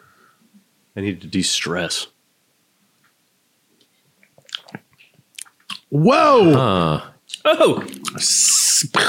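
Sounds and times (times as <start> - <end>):
speech: 1.0 - 2.2, 5.9 - 9.0
chewing a mouthful of seeds: 4.2 - 5.9
person sipping a drink: 4.3 - 5.8, 7.3 - 8.3.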